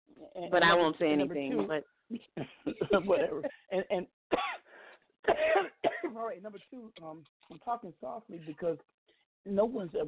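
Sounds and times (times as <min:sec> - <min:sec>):
speech: 0:00.2 - 0:04.6, 0:05.2 - 0:10.0
short raspy coughs: 0:04.3 - 0:06.2.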